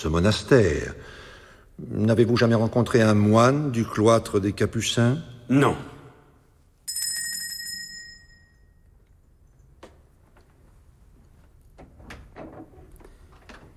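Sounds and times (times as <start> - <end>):
speech: 0.0 - 1.2, 1.8 - 5.9
bright bell ringing: 6.8 - 9.0
door opening with soft knocks and scrapes: 11.5 - 13.7.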